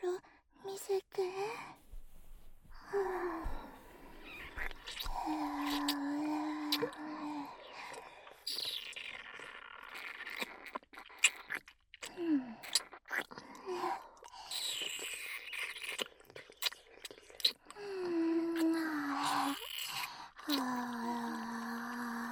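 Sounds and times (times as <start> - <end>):
speech: 0.8 - 1.8
breathy whimpers and sighs: 2.7 - 11.3, 12.0 - 22.3
wet sucking mouth sounds: 3.0 - 17.8, 18.5 - 21.0
chewing-like noises: 4.1 - 17.9, 18.5 - 20.9.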